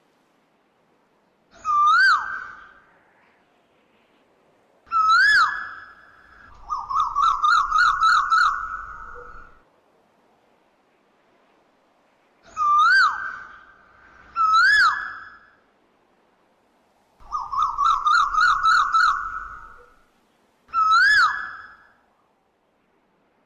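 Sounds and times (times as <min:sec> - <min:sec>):
Asian koel swooping and rising-falling whistled calls: 0:04.9 - 0:09.6, 0:12.5 - 0:15.6, 0:17.2 - 0:20.0, 0:20.7 - 0:22.0.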